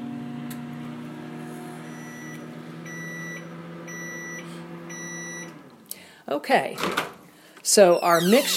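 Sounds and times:
microwave oven humming: 0.0 - 5.8
speech: 6.3 - 8.5.

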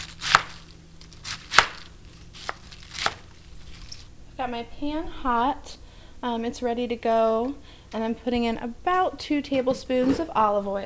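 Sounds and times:
knife chopping quartered and halved cabbage into chunks against a board: 0.0 - 3.3
faint low hum: 0.0 - 10.8
speech: 4.4 - 10.8.

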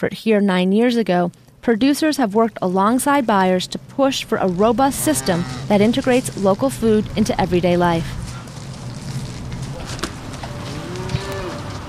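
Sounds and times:
speech: 0.0 - 8.2
steady noisy outdoor background on a dairy farm: 0.0 - 11.8
heifers mooing on a dairy farm near Waukon, Iowa: 4.4 - 6.2, 9.8 - 11.8.

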